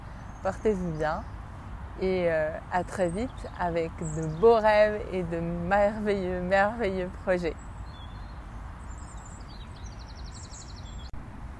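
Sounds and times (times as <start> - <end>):
springtime birds chirping and twittering: 0.0 - 11.2
speech: 0.4 - 1.4, 2.0 - 7.6.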